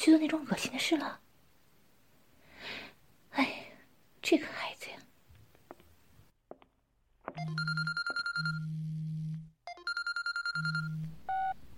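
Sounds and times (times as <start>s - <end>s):
speech: 0.0s - 1.2s, 4.2s - 4.8s
electronic telephone ringing with buzzing low tone and chiming harmonics: 7.4s - 8.8s, 9.7s - 11.6s.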